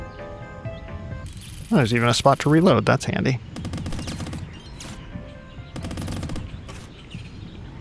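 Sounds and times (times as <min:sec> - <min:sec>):
speech: 0:01.7 - 0:03.5
video game rapid gunfire aimed at rocks holding up an anchor: 0:03.6 - 0:07.0.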